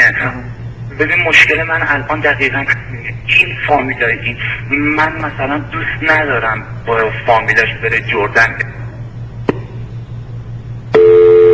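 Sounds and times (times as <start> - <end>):
faint electrical hum: 0.0 - 11.5
speech: 0.2 - 8.8
telephone busy tone after dropped call: 10.9 - 11.5.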